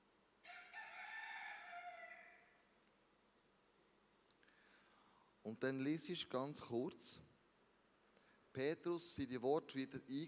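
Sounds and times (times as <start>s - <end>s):
rooster crowing: 0.4s - 2.6s
speech: 5.4s - 7.4s, 8.6s - 10.2s.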